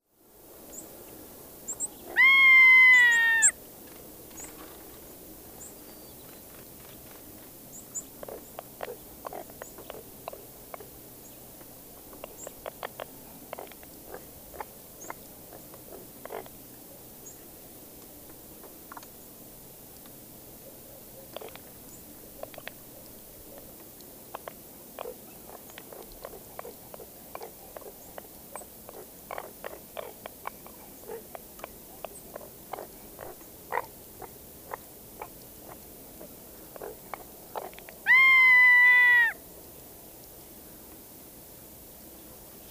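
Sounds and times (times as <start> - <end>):
Ferruginous Hawk Buteo regalis calling: 2.1 - 3.6, 38.0 - 39.4.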